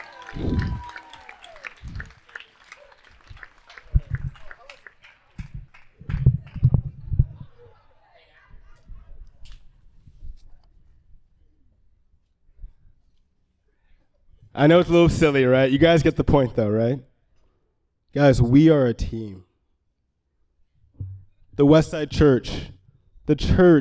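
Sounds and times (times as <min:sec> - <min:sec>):
room full of people clapping: 0:00.0 - 0:07.4
speech: 0:00.4 - 0:00.6, 0:14.6 - 0:17.1, 0:18.1 - 0:19.5, 0:21.6 - 0:23.7.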